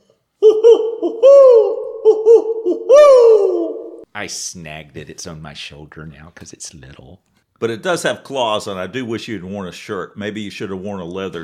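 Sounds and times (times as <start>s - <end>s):
owl hooting: 0.4s - 4.0s
speech: 4.2s - 11.4s.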